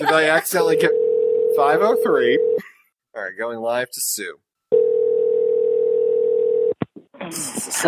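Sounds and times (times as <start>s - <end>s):
speech: 0.1s - 1.0s, 1.6s - 4.4s, 7.3s - 7.8s
telephone dial tone: 4.7s - 6.8s.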